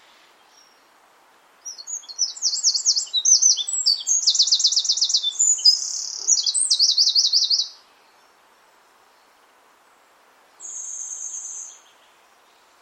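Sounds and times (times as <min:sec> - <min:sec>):
bird chirping and trilling: 0:01.7 - 0:07.8.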